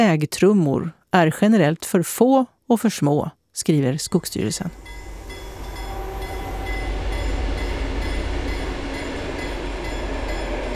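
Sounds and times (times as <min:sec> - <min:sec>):
speech: 0:00.0 - 0:05.0
train rushing past on railway embankment: 0:04.2 - 0:10.7.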